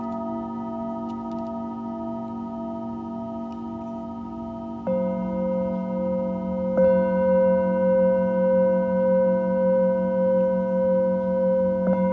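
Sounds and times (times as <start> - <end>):
singing bowls ringing: 0.0 - 12.1.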